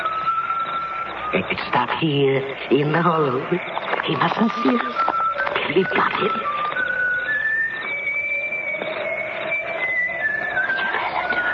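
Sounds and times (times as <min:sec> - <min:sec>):
man whistling a slow wavering tune: 0:00.0 - 0:01.8, 0:04.2 - 0:11.5
steady hiss: 0:00.0 - 0:11.5
speech: 0:01.3 - 0:05.1, 0:05.7 - 0:06.5.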